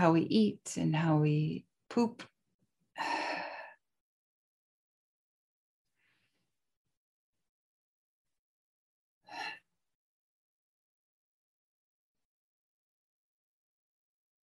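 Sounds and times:
speech: 0.0 - 2.3
slow box breathing inhales and exhales: 3.0 - 3.8, 9.3 - 9.7.

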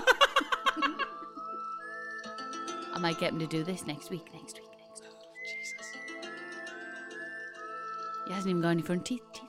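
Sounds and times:
people laughing: 0.0 - 1.6
speech: 3.0 - 4.7, 8.3 - 9.3
person whistling a short tune: 5.4 - 6.4.

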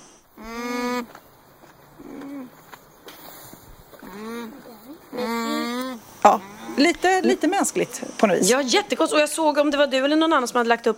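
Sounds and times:
faint outdoor noise: 0.0 - 10.9
alpacas vocalizing with nasal humming calls: 0.4 - 1.2, 2.0 - 2.6, 3.9 - 7.4
speech: 6.2 - 10.9.

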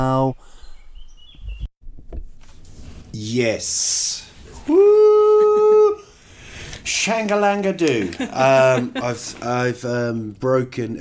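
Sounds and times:
birds chirping and whistling outdoors: 0.0 - 1.7
speech: 3.2 - 4.9, 7.0 - 10.9
laughter: 4.7 - 6.1, 7.8 - 9.7.

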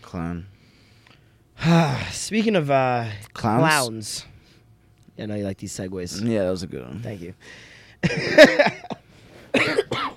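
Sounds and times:
speech: 0.1 - 0.6, 1.6 - 4.3, 5.2 - 8.8
person coughing: 8.0 - 10.1.

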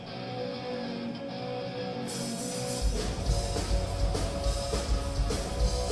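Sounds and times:
crowd noise: 0.0 - 5.9
loud live concert recording of a song: 0.0 - 5.9
heavy booming bass beats: 2.8 - 5.9.

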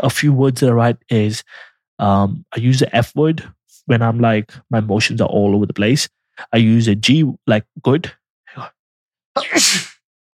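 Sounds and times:
speech: 0.0 - 8.8, 9.4 - 9.9
person sneezing: 9.4 - 10.0.

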